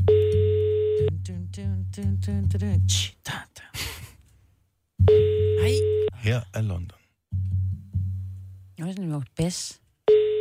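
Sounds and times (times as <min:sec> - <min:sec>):
ringback tone on an outgoing phone call: 0:00.1 - 0:01.1, 0:05.1 - 0:06.1, 0:10.1 - 0:10.3
speech: 0:01.3 - 0:03.8, 0:06.2 - 0:07.0, 0:08.8 - 0:09.8.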